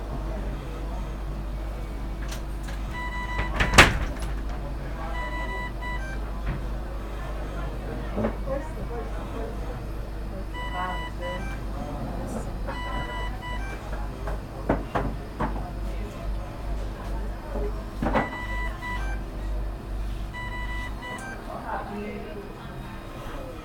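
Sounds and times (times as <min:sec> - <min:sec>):
scattered voices in a hospital emergency room: 0:00.0 - 0:23.6
steady low mechanical hum in a hospital emergency room: 0:00.0 - 0:23.6.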